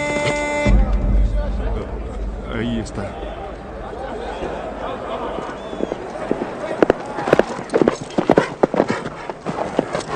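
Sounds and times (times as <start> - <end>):
rushing noise: 0.7 - 10.1
speech: 2.6 - 3.3
laughter: 3.1 - 7.8
many horses' hooves clip-clopping: 4.3 - 10.1.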